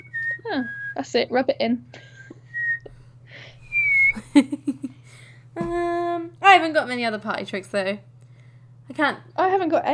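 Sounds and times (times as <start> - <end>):
person whistling: 0.0 - 1.0, 2.5 - 3.0, 3.6 - 4.3
low steady hum: 0.0 - 9.9
speech: 0.5 - 2.1, 4.2 - 4.6, 5.6 - 8.1, 9.0 - 9.9.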